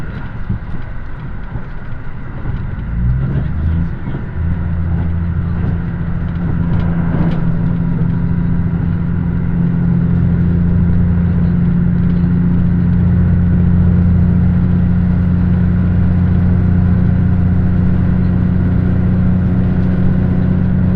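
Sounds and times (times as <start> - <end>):
rail clatter: 0.0 - 13.0
deep steady engine drone aboard a diesel express train: 0.0 - 20.9.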